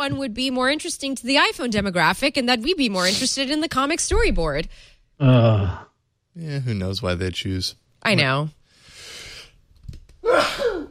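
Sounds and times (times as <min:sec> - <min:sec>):
speech: 0:00.0 - 0:08.6
person sneezing: 0:10.2 - 0:10.9.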